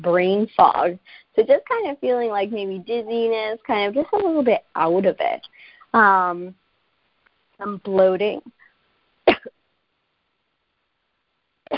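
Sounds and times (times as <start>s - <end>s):
speech: 0.0s - 6.6s, 7.6s - 8.6s
person with a tickle in the throat coughing: 9.3s - 9.5s.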